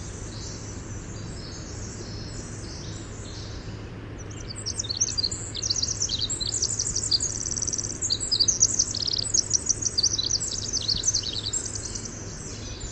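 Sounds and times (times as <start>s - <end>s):
winter wren singing: 0.0s - 12.8s
steady low hum: 4.2s - 12.8s.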